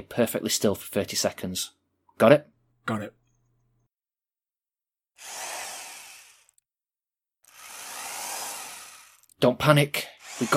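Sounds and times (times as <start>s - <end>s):
speech: 0.0s - 3.2s, 9.4s - 10.5s
power drill whirring: 5.2s - 6.6s, 7.4s - 9.4s, 10.1s - 10.5s.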